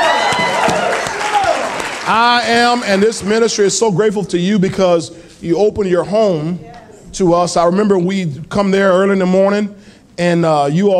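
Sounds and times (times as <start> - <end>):
crowd cheering with shouts and whoops: 0.0 - 2.0
crowd applauding: 0.0 - 3.3
speech: 2.1 - 10.9.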